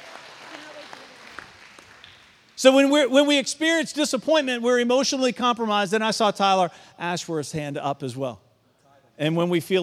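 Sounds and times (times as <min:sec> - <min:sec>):
audience clapping: 0:00.0 - 0:02.6
speech: 0:02.6 - 0:08.4, 0:09.2 - 0:09.8.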